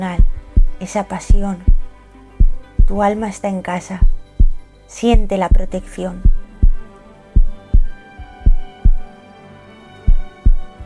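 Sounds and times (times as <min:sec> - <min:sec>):
heartbeat sound effect with deep lub-dub thumps: 0:00.2 - 0:03.1, 0:04.0 - 0:09.1, 0:10.1 - 0:10.7
speech: 0:00.8 - 0:01.8, 0:02.9 - 0:04.2, 0:04.9 - 0:06.3.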